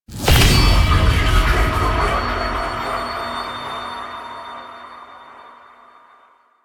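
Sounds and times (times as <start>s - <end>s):
cinematic ringing tone: 0.3s - 6.5s.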